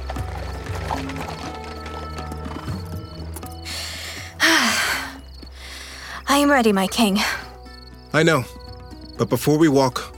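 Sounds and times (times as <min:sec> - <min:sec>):
hooves of horse-drawn chariot clip-clopping: 0:00.0 - 0:03.6
speech: 0:06.3 - 0:07.4, 0:08.1 - 0:08.6, 0:09.2 - 0:10.1.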